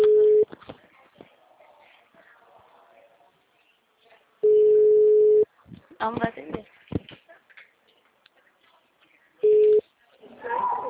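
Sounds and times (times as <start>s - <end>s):
telephone line tone after a dropped call: 0.0s - 0.5s, 4.4s - 5.4s, 9.4s - 9.8s
speech: 6.0s - 6.4s.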